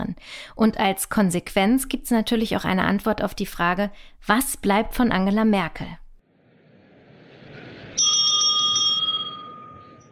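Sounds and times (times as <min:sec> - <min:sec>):
speech: 0:00.2 - 0:06.0
bell ringing to open a German Bundestag session: 0:08.0 - 0:10.0.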